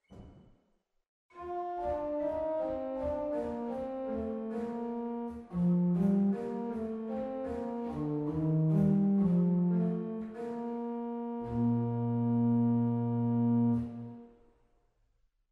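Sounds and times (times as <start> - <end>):
organ in Waltershausen with Quint stop: 1.9 - 14.2.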